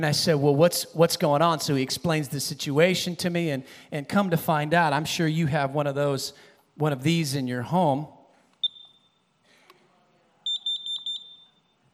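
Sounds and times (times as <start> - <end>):
speech: 0.0 - 8.2
carbon monoxide alarm beeping in a home: 8.6 - 9.2, 10.5 - 11.8.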